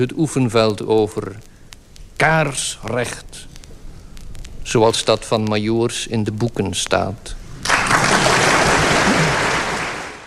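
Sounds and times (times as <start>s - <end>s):
speech: 0.0s - 1.5s, 2.2s - 3.5s, 4.7s - 7.4s
audience of students in Leuven applauding: 7.6s - 10.2s.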